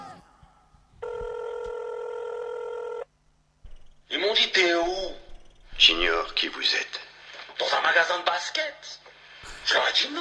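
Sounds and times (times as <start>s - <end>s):
faint noise: 0.0s - 10.1s
telephone ringing with a buzzing electronic tone: 1.0s - 7.0s
speech: 5.8s - 7.0s, 7.6s - 9.0s, 9.6s - 10.1s.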